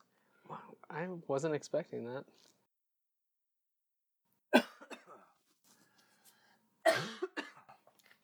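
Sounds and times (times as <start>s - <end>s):
speech: 0.9s - 2.6s
person coughing harshly: 4.6s - 5.3s, 6.8s - 7.9s.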